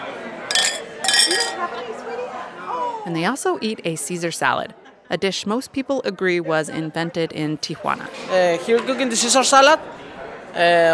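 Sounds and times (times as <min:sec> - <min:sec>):
low murmur of chatter in a restaurant attached to a museum: 0:00.0 - 0:10.9
wine and beer glasses clinking in a toast: 0:00.5 - 0:01.7
speech: 0:03.1 - 0:10.0, 0:10.6 - 0:10.9.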